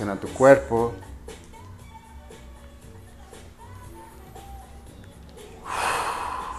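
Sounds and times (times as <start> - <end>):
speech: 0.1 - 1.1
deep breathing in through the nose and out through the mouth: 5.6 - 6.5.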